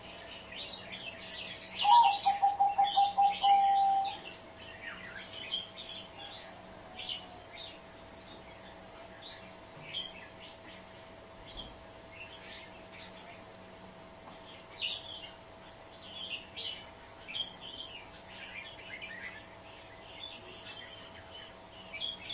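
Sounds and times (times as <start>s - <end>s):
high chirps and twitters from other birds: 0.0s - 22.3s
spotted dove coo phrase used as a trapping lure: 1.8s - 4.2s.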